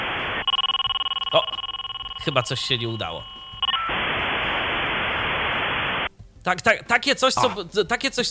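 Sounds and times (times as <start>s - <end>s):
dial-up modem line hiss: 0.0s - 6.1s
brief tone: 0.4s - 3.9s
speech: 2.2s - 3.3s, 6.4s - 8.3s.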